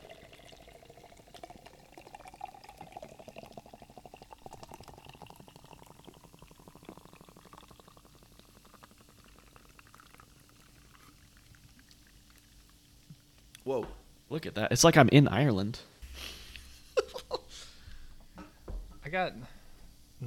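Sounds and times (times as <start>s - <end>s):
beer pouring and foaming: 0.0s - 13.6s
speech: 13.7s - 16.3s, 19.1s - 19.6s
laughter: 16.2s - 17.7s.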